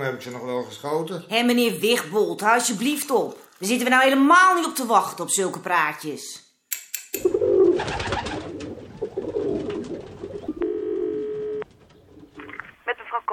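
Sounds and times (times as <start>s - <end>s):
speech: 0.0s - 6.4s
pigeons cooing: 7.2s - 12.7s.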